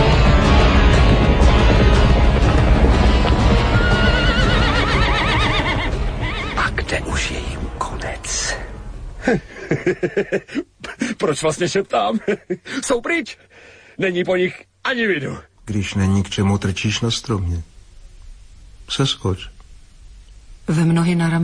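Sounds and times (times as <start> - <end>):
loud dense clatter of hooves: 0.0 - 6.5
several horses whinnying: 3.0 - 6.7
laughter: 9.2 - 11.2, 12.1 - 12.7
speech: 9.3 - 17.7, 18.9 - 19.5, 20.7 - 21.4.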